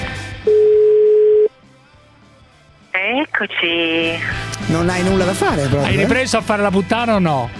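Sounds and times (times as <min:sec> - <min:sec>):
telephone dial tone while placing a call: 0:00.5 - 0:01.5
speech: 0:03.4 - 0:07.5.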